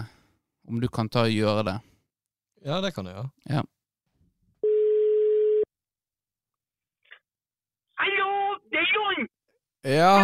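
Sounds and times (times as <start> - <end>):
speech: 0.7 - 1.9, 2.6 - 3.8, 8.7 - 10.2
telephone ringback tone while a call is being placed: 4.6 - 5.7.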